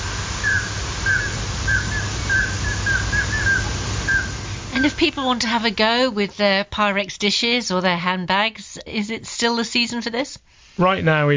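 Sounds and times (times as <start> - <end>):
common scoter flight calls during nocturnal migration: 0.0 - 5.5
steady low hum: 0.0 - 7.0
speech: 4.8 - 11.3.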